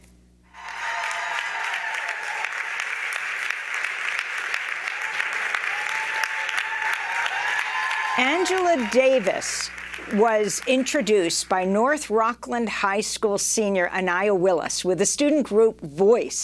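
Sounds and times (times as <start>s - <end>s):
large audience applauding: 0.5s - 11.3s
speech: 8.2s - 16.4s.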